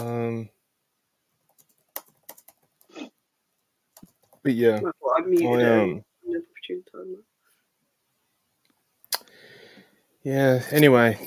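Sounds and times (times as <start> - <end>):
clicky keystrokes on a computer keyboard: 1.5 - 2.9, 4.0 - 4.4
speech: 4.4 - 6.1, 7.0 - 7.3, 10.2 - 11.2.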